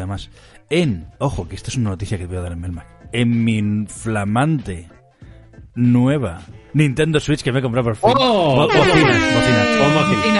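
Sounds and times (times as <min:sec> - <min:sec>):
speech: 0:00.0 - 0:05.0, 0:05.8 - 0:10.3
air horns blaring: 0:08.7 - 0:10.3.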